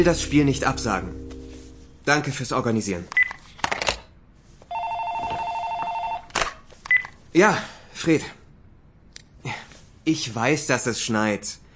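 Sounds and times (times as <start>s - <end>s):
speech: 0.0s - 1.2s, 2.1s - 3.2s, 7.4s - 8.4s, 9.4s - 11.6s
telephone ringing in a coach's office: 4.7s - 6.3s.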